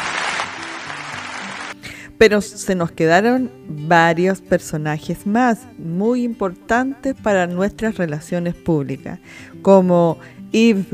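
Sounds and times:
crowd clapping: 0:00.0 - 0:01.8
speech: 0:02.2 - 0:10.9.

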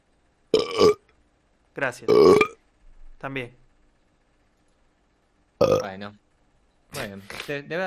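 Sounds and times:
loud burp: 0:00.6 - 0:01.0, 0:02.1 - 0:02.6, 0:05.6 - 0:05.9
speech: 0:01.8 - 0:02.5, 0:03.2 - 0:03.6, 0:05.6 - 0:06.2, 0:06.9 - 0:07.8.

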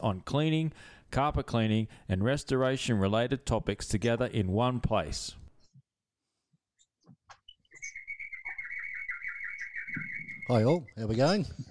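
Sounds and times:
speech: 0:00.0 - 0:05.4, 0:10.0 - 0:11.7
birds chirping and twittering: 0:07.4 - 0:11.4.

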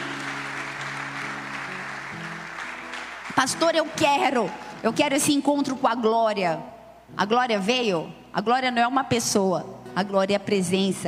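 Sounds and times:
large crowd applauding: 0:00.0 - 0:05.0
speech: 0:03.3 - 0:11.0.

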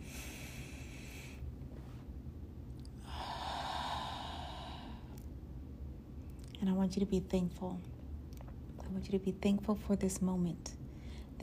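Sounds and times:
deep breath: 0:00.0 - 0:01.5, 0:03.0 - 0:05.2
speech: 0:06.6 - 0:08.0, 0:08.9 - 0:10.8.

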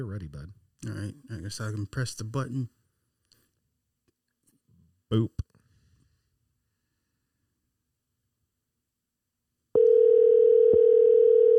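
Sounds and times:
speech: 0:00.0 - 0:02.8, 0:05.1 - 0:05.5
outgoing phone call ringback tone: 0:09.8 - 0:11.5.

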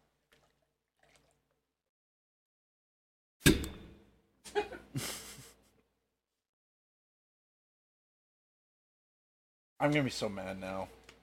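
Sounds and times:
glass being swirled to rinse it out, sloshing: 0:00.0 - 0:01.6
liquid splashing into a glass to rinse it: 0:00.2 - 0:01.6
speech: 0:03.4 - 0:03.7, 0:09.8 - 0:11.0
laughter: 0:04.5 - 0:05.7.

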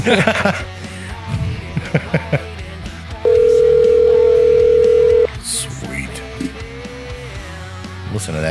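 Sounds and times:
laughter: 0:00.0 - 0:01.0, 0:01.6 - 0:02.6
speech: 0:00.0 - 0:01.4, 0:08.2 - 0:08.4
telephone dial tone from a bar and grill phone system: 0:03.3 - 0:05.3.

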